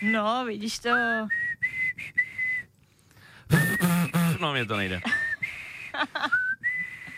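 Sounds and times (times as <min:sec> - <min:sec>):
speech: 0:00.0 - 0:02.2, 0:03.8 - 0:05.2
person whistling a tune: 0:01.3 - 0:02.7, 0:03.5 - 0:04.4, 0:05.1 - 0:07.1
person laughing: 0:03.5 - 0:06.4.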